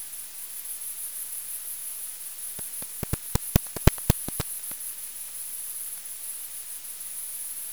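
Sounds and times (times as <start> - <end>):
bat echolocation clicks recorded with a bat detector: 2.6 - 4.8.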